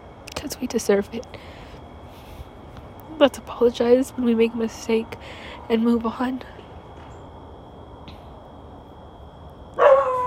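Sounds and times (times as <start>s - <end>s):
quiet hum: 0.0s - 10.2s
speech: 0.4s - 1.6s, 3.2s - 6.6s
single sharp loud dog bark: 9.8s - 10.2s.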